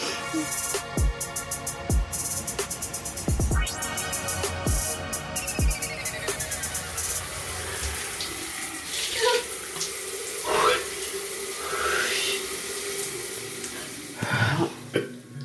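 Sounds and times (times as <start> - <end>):
cold shower water running: 0.0 - 15.4
shower spray splashing: 5.8 - 15.4.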